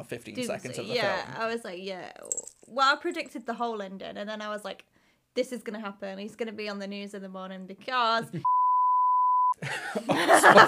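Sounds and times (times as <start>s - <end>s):
speech: 0.0s - 8.6s, 9.6s - 10.6s
steady loud censor beep over a spoiler: 8.4s - 9.6s
people bursting into lively laughter and chuckling: 9.6s - 10.6s.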